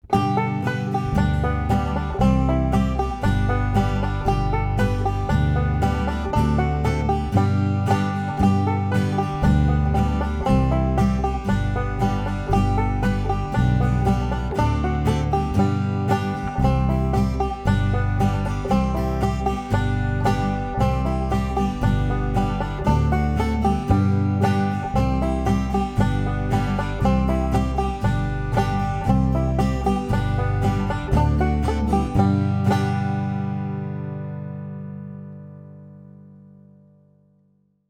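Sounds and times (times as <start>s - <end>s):
5 string banjo played in natural style: 0.0s - 36.4s.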